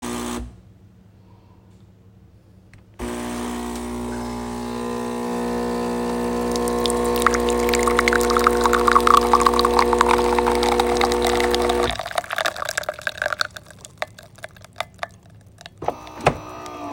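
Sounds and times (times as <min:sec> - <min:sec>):
coffee machine: 0:03.0 - 0:15.2, 0:15.8 - 0:16.9.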